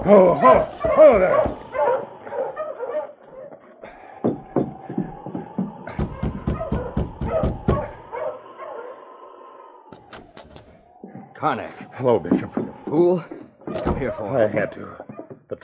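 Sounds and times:
speech: 0.0s - 1.6s, 11.4s - 13.4s, 14.0s - 15.1s
several sled dogs barking and yipping as a dog sled team halts: 0.0s - 9.2s, 10.8s - 15.5s.

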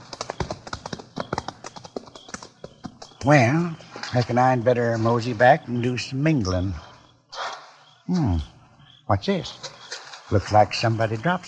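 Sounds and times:
horse hooves clip-clopping: 0.0s - 4.4s
speech: 3.2s - 6.8s, 8.1s - 8.5s, 9.1s - 9.7s, 10.3s - 11.4s.

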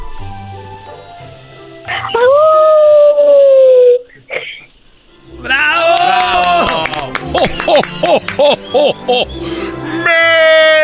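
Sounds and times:
child imitating a wolf howl: 2.1s - 4.0s
laughter: 5.8s - 10.2s
speech: 8.7s - 9.6s.

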